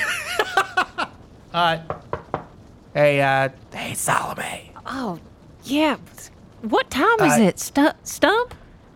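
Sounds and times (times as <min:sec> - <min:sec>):
speech: 0:01.5 - 0:02.0, 0:02.9 - 0:08.9
knocking on the door to a room: 0:01.8 - 0:02.5.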